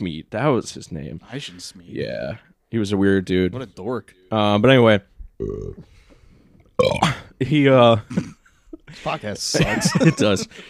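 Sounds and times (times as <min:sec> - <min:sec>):
speech: 0:00.0 - 0:06.0, 0:06.8 - 0:10.6
person burping: 0:05.4 - 0:05.9, 0:06.7 - 0:07.3, 0:08.1 - 0:08.4.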